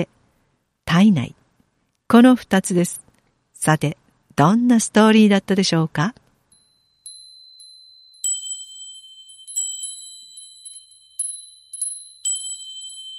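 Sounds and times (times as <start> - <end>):
speech: 0.9 - 1.4, 2.1 - 3.0, 3.6 - 6.2
wind chime ringing with bright high metallic tones: 6.5 - 13.1.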